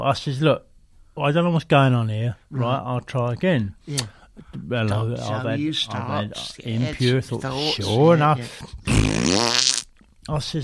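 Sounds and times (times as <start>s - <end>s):
speech: 0.0s - 10.6s
fart noise: 8.6s - 10.0s.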